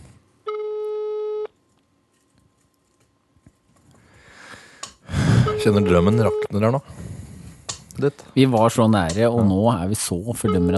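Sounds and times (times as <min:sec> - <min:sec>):
electronic telephone busy signal after call hung up: 0:00.5 - 0:01.5, 0:05.4 - 0:06.6, 0:10.5 - 0:10.7
speech: 0:05.6 - 0:07.0, 0:08.0 - 0:10.7.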